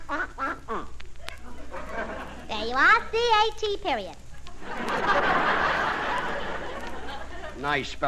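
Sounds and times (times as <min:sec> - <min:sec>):
duck quacking: 0:00.0 - 0:00.9
laughter: 0:01.2 - 0:02.5, 0:04.3 - 0:08.0
speech: 0:02.7 - 0:05.5, 0:07.6 - 0:08.0.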